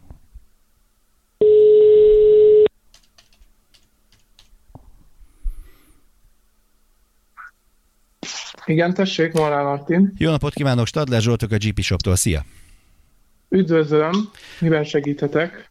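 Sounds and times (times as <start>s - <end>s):
electronic telephone tone while calling a prize winner: 1.4s - 2.7s
speech: 8.7s - 12.6s, 13.5s - 15.7s.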